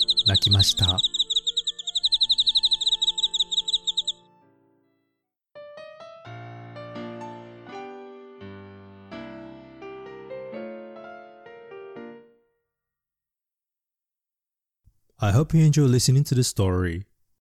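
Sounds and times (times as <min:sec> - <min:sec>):
cricket chirping: 0:00.0 - 0:04.2
speech: 0:00.3 - 0:01.2, 0:15.2 - 0:17.1.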